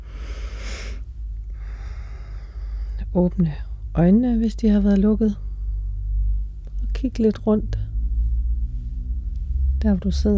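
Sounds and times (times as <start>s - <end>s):
deep breath drawn in during a guided meditation: 0.0s - 3.0s
steady low hum: 0.0s - 10.3s
speech: 3.1s - 5.4s, 7.0s - 7.8s, 9.8s - 10.3s.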